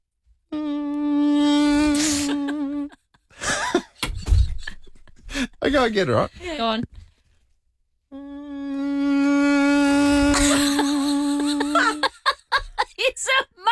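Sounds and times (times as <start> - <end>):
person imitating a mosquito with a high nasal buzz: 0.5 - 3.0, 8.1 - 12.0
laughter: 2.0 - 6.0, 10.3 - 13.1
speech: 5.6 - 6.9.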